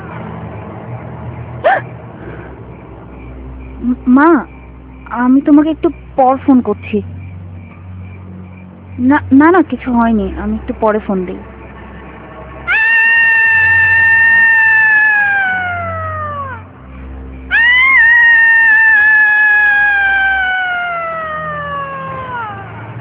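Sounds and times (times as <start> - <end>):
speech: 3.8 - 4.5, 5.1 - 7.2, 9.0 - 11.5
cat-like wails late at night: 12.7 - 16.7, 17.5 - 22.9.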